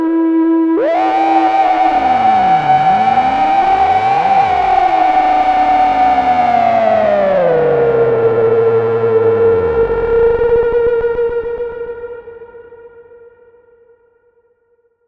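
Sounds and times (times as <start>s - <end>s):
over-resonated Monotron filtering: 0.2s - 12.8s.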